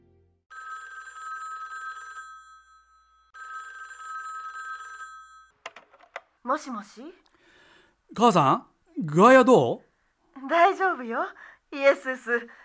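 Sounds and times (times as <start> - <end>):
telephone ringing: 0.5 - 5.9
speech: 6.4 - 7.3, 8.1 - 12.6.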